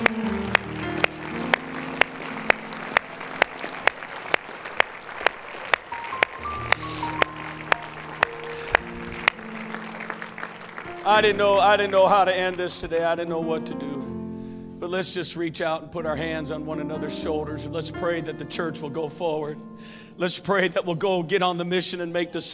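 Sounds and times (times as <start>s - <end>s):
sustained keyboard or organ chords: 0.0s - 4.8s, 5.8s - 20.3s
audience clapping hands in a steady rhythmic beat: 0.0s - 13.1s
speech: 11.1s - 13.9s, 14.8s - 22.5s.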